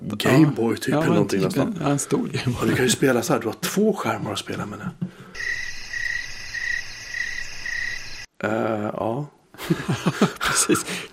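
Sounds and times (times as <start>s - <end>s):
speech: 0.1s - 5.6s, 8.4s - 11.1s
crickets chirping in a high-pitched trill: 5.3s - 8.3s
laughter: 9.6s - 11.1s.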